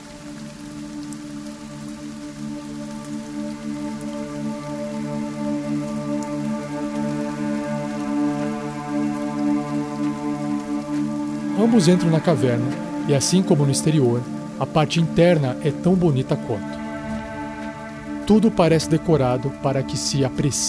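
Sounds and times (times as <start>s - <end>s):
rain falling: 0.0s - 20.6s
speech: 11.6s - 16.8s, 18.3s - 20.6s
low droning hum: 16.6s - 19.9s.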